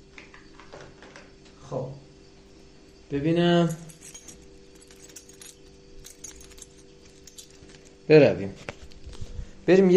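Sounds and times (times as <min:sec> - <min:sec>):
speech: 0:01.7 - 0:02.1, 0:03.1 - 0:03.9, 0:08.1 - 0:08.7, 0:09.6 - 0:09.9
keys and a ring picked up with a soft metallic jangle: 0:03.5 - 0:08.0.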